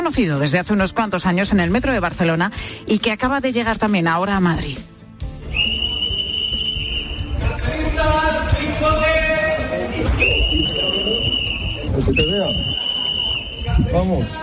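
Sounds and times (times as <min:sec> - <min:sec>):
speech: 0:00.0 - 0:04.9, 0:12.0 - 0:12.8, 0:13.8 - 0:14.4
crowd noise on a busy street: 0:05.4 - 0:14.4
loud shrill whistle blasts from a citizen anti-pickpocket patrol: 0:05.5 - 0:07.4, 0:10.2 - 0:13.9.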